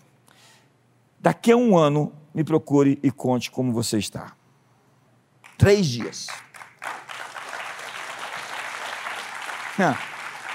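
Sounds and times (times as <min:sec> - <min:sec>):
speech: 0:01.2 - 0:04.4, 0:05.6 - 0:06.4, 0:09.8 - 0:10.1
weak light audience applause: 0:05.4 - 0:10.5.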